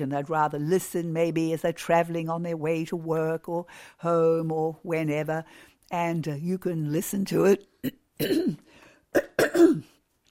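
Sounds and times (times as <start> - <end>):
speech: 0.0 - 9.9
speaker clearing throat: 7.8 - 8.6, 9.2 - 10.0.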